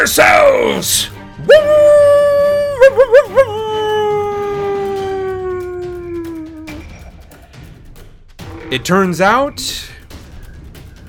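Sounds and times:
speech: 0.0 - 2.1, 8.7 - 9.9
wolf howling: 1.5 - 7.2.

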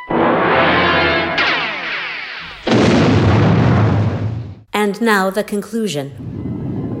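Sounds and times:
ship blowing up in heavy explosions: 0.0 - 4.7
speech: 4.9 - 6.3.

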